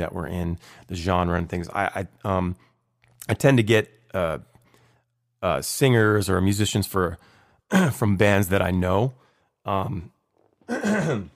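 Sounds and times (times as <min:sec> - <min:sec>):
speech: 0:00.0 - 0:04.5, 0:05.4 - 0:11.3
person clearing throat: 0:10.7 - 0:11.3.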